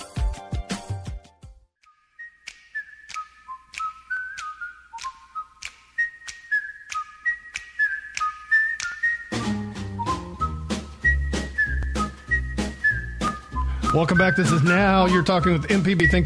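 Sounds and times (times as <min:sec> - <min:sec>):
person whistling a lilting melody: 0:01.9 - 0:16.2
full instrumental backing music: 0:09.2 - 0:16.2
speech: 0:14.0 - 0:16.2.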